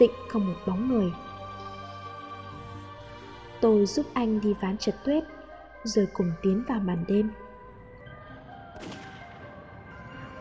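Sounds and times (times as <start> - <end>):
speech: 0.0 - 1.3, 3.6 - 7.4, 8.8 - 9.0
distant gunshot echoing: 8.8 - 10.1.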